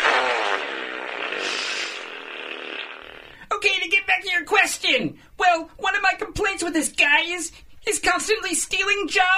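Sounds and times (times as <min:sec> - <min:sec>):
long loud raspy fart from eating jalapeno jelly and bean burritos: 0:00.0 - 0:03.4
speech: 0:03.6 - 0:09.3.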